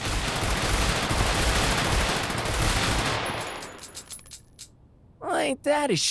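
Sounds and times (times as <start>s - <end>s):
rapid gunfire as a gun is emptied: 0.0s - 3.7s
speech: 5.4s - 6.1s.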